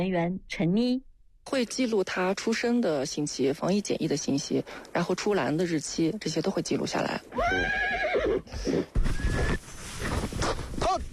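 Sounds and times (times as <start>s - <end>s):
speech: 0.0s - 9.6s, 10.5s - 11.1s
horse neighing while riders herd sheep toward autumn pasture: 7.3s - 9.6s
rustling: 8.5s - 11.1s.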